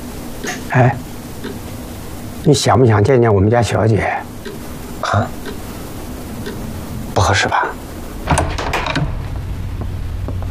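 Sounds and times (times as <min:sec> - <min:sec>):
speech: 0:00.4 - 0:01.6, 0:02.4 - 0:04.3, 0:05.1 - 0:05.4, 0:07.2 - 0:07.7
door opening as someone walks into a room: 0:08.2 - 0:09.8.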